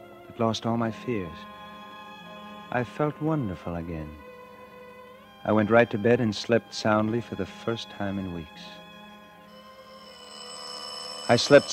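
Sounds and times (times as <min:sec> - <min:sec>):
speech: 0:00.4 - 0:01.6, 0:02.7 - 0:04.2, 0:05.4 - 0:08.8, 0:11.3 - 0:11.7
doorbell ringing: 0:09.5 - 0:11.7.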